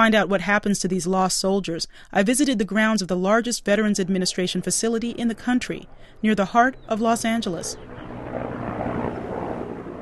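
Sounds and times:
speech: 0.0 - 8.5
medical helicopter taking off from a veterans hospital campus in Los Angeles: 3.8 - 9.9.

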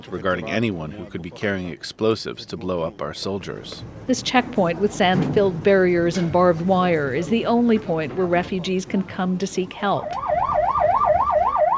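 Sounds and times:
speech: 0.0 - 10.3
ambulance siren wailing at a sand-barricaded barbed-wire checkpoint: 10.0 - 11.7.

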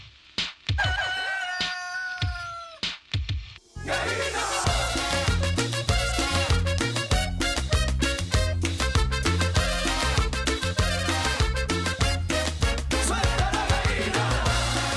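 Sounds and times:
short rooster-like crow: 0.7 - 2.9
driving percussion: 2.2 - 3.7, 4.6 - 14.9
loud steady Mexican-style cumbia in norteño style: 3.6 - 14.9
bouncy bass line: 4.6 - 14.9.

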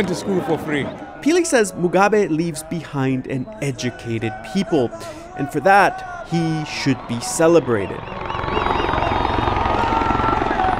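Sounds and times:
speech: 0.0 - 8.8
military helicopter turbine whining: 6.2 - 10.7
military helicopter rotor thumping at a stadium: 8.0 - 10.7.

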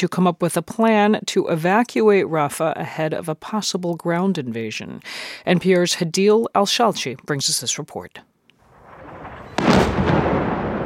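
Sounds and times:
speech: 0.0 - 8.3
heavy shelling explosions in a city: 8.6 - 10.8.

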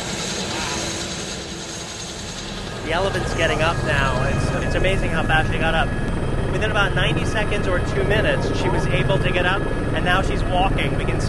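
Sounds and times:
helicopter at an elephant immobilization in the field: 0.0 - 11.2
speech: 2.9 - 11.2.

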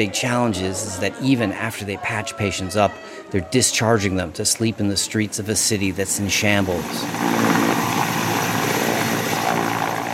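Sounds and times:
speech: 0.0 - 8.0
large white helicopter rotor and engine roaring at an airport: 6.1 - 10.1.

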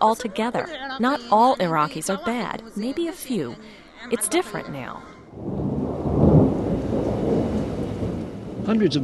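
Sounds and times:
speech: 0.0 - 5.6, 8.7 - 9.0
faint hiss of rain: 5.3 - 9.0
rumble of thunder from a desert thunderstorm: 5.3 - 9.0.

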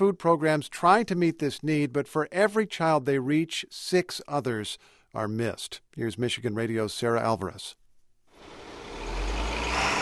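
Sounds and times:
speech: 0.0 - 7.8
truck engine rumbling as trucks haul food away from a commercial kitchen: 8.4 - 9.9.

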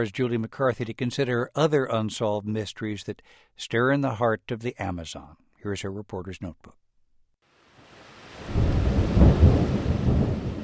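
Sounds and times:
speech: 0.0 - 6.8
rain: 7.5 - 10.6
thunder during an Amazon rainstorm: 8.3 - 10.6.

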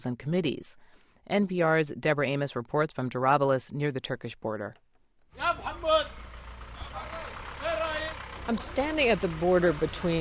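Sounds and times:
speech: 0.0 - 6.2, 8.5 - 10.1
idling trucks and cars on a congested road: 5.4 - 10.1.

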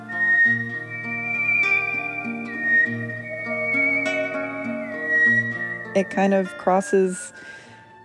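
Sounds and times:
instrumental backing of low bass and chords: 0.0 - 6.4
person whistling a smooth sustained melody: 0.0 - 7.9
speech: 6.0 - 7.5.

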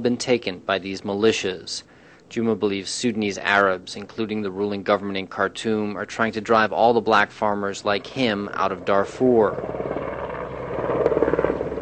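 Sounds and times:
speech: 0.0 - 10.0
helicopter carrying relief supplies near a relief camp: 6.1 - 11.7.

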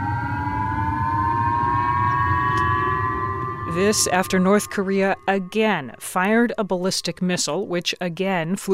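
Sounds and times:
emergency warning siren in northern Hokkaido after a ballistic missile: 0.0 - 7.6
constant low rumble of noise: 0.0 - 8.4
speech: 3.8 - 8.7.

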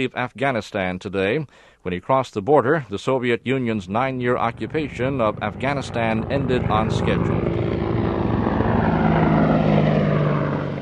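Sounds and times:
speech: 0.0 - 7.6
Apache attack helicopters flying low overhead: 4.2 - 10.8.

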